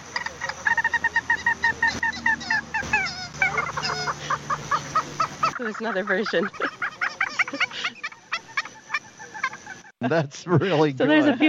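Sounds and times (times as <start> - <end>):
recorded call of a secretive marsh bird played back during monitoring: 0.0 - 6.0
laughter: 0.0 - 11.4
speech: 5.6 - 6.8, 10.0 - 11.4.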